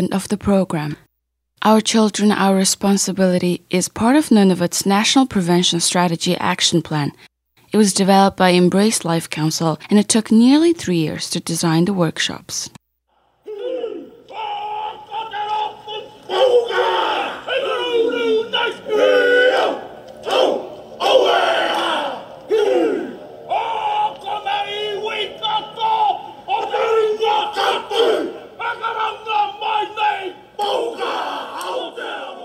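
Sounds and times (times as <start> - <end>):
speech: 0.0 - 12.8
biker gang men chanting a Haka war dance in New Zealand: 13.2 - 32.4.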